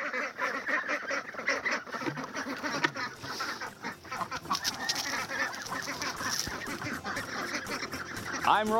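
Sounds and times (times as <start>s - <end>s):
noisy flock of hungry ducks quacking: 0.0s - 8.7s.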